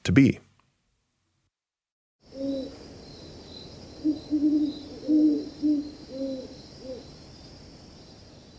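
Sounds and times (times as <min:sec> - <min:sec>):
speech: 0:00.0 - 0:00.4
steady high-pitched insect drone: 0:02.2 - 0:08.5
two horned owls hooting in duet: 0:02.3 - 0:02.8, 0:04.0 - 0:07.1.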